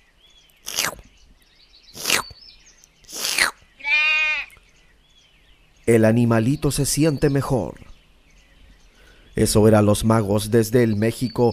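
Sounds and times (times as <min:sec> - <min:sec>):
goat bleating with rasping bursts: 0:03.1 - 0:04.6
speech: 0:05.9 - 0:07.9, 0:09.4 - 0:11.5.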